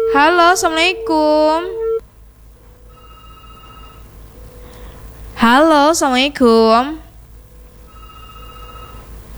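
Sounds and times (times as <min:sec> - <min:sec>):
telephone ringing with an electronic tone: 0:00.0 - 0:02.0, 0:02.8 - 0:04.7, 0:07.8 - 0:09.3
low hum: 0:00.0 - 0:09.3
speech: 0:00.1 - 0:01.8, 0:05.4 - 0:07.0.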